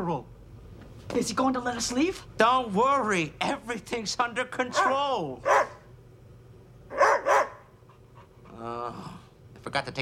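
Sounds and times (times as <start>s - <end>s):
speech: 0.0s - 0.4s, 1.1s - 5.7s, 9.7s - 10.0s
dog barking: 4.7s - 5.9s, 6.9s - 7.7s.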